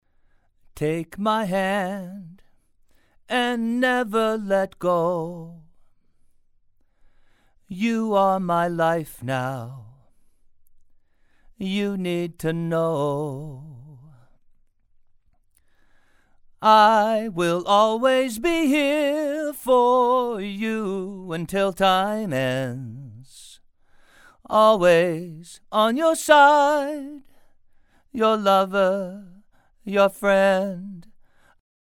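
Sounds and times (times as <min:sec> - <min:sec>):
man singing: 0:00.8 - 0:02.5, 0:03.3 - 0:05.8, 0:07.7 - 0:10.1, 0:11.6 - 0:14.3, 0:16.6 - 0:23.6, 0:24.4 - 0:27.3, 0:28.1 - 0:31.2.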